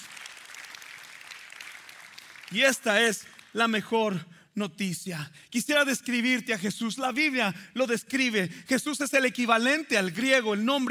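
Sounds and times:
audience applauding: 0:00.0 - 0:03.8
speech: 0:02.5 - 0:10.8.

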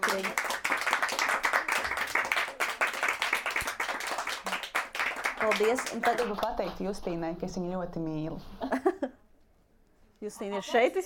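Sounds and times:
audience applauding at the close of a talk on feminism: 0:00.0 - 0:06.8
speech: 0:05.4 - 0:09.2, 0:10.2 - 0:11.0.

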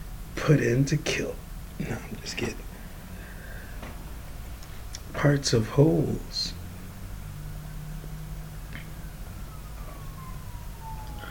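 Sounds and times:
steady bed of noise and low hum: 0:00.0 - 0:11.2
speech: 0:00.5 - 0:02.7, 0:05.2 - 0:06.6
classic siren sound effect: 0:06.7 - 0:11.2.

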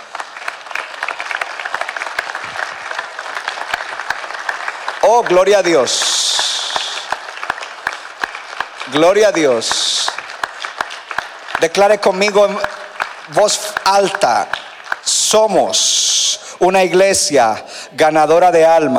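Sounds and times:
congregation applauding: 0:00.0 - 0:15.8
speech: 0:05.1 - 0:06.6, 0:08.9 - 0:10.0, 0:11.6 - 0:12.6, 0:13.3 - 0:14.6, 0:15.3 - 0:16.0, 0:16.6 - 0:18.9.

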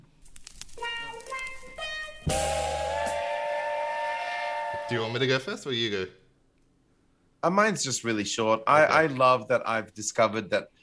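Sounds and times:
train whistle sound effect in rising stepped tones: 0:01.8 - 0:05.2
speech: 0:04.9 - 0:06.2, 0:07.4 - 0:10.8.

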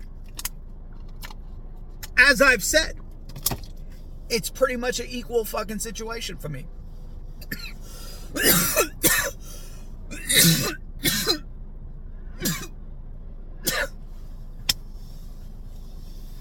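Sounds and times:
speech: 0:02.2 - 0:03.0, 0:04.3 - 0:06.8, 0:08.3 - 0:08.9
harsh coughing: 0:07.5 - 0:09.4, 0:10.1 - 0:11.4, 0:12.4 - 0:12.7, 0:13.7 - 0:14.0.

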